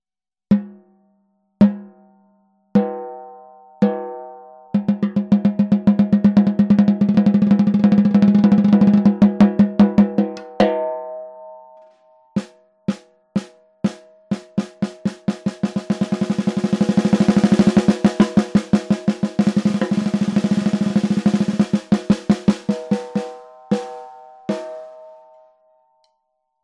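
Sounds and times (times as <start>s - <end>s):
Tama 14x6.5 snare drum: 4.8s - 10.6s, 12.4s - 25.0s.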